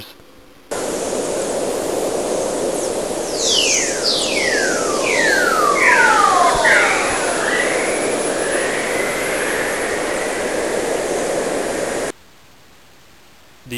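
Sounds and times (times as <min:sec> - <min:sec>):
plasma wave: 0:00.7 - 0:12.1
whistle: 0:03.3 - 0:10.6.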